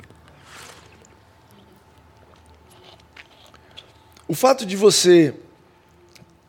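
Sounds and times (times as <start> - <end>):
person drinking water: 0.0 - 4.3
low steady hum: 0.0 - 6.4
speech: 4.3 - 5.5.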